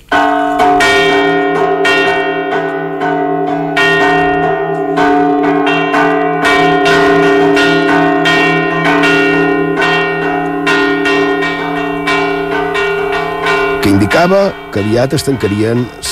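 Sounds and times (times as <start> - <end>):
church bells ringing the traditional signal for the lost: 0.0 - 16.1
speech: 14.2 - 16.1.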